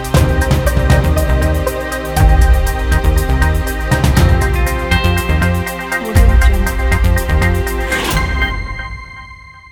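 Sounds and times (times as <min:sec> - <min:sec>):
news ident jingle: 0:00.1 - 0:09.7.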